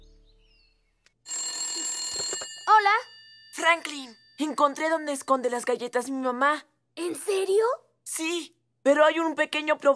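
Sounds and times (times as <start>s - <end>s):
telephone bell ringing: 1.3s - 5.3s
speech: 2.8s - 9.9s.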